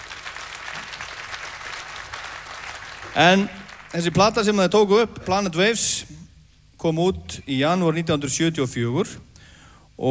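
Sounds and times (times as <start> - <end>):
audience applause at a seventieth-birthday tribute concert: 0.0 - 4.6
speech: 3.1 - 6.2, 6.8 - 9.3.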